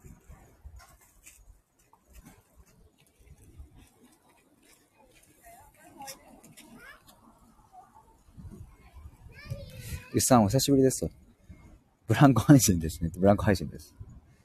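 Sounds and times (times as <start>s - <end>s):
children playing and chattering outdoors: 5.1s - 10.3s
speech: 10.1s - 11.2s, 12.1s - 14.0s.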